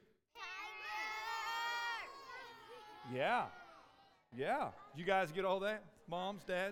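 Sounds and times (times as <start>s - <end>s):
many children yelling their favorite animals: 0.4s - 4.2s
speech: 3.0s - 3.6s, 4.3s - 6.7s.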